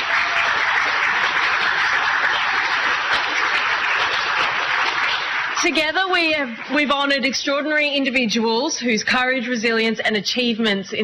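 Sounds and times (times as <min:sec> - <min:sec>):
sizeable crowd applauding: 0:00.0 - 0:07.4
speech: 0:05.6 - 0:11.0.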